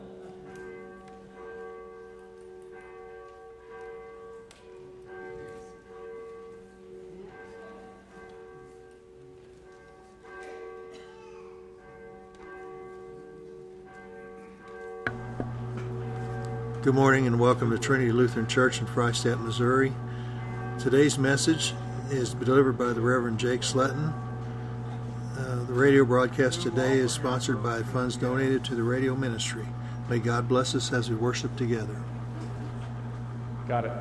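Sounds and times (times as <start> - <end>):
church bell ringing at the start of a worship service in Freistatt Missouri: 0.0 - 34.0
speech: 16.8 - 20.1, 20.8 - 24.2, 25.8 - 32.1, 33.7 - 34.0.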